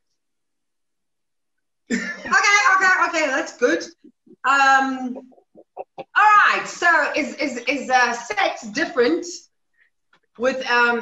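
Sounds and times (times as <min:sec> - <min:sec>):
raspy cough: 0:01.9 - 0:02.4
speech: 0:03.2 - 0:05.4, 0:06.2 - 0:09.5, 0:10.4 - 0:10.9.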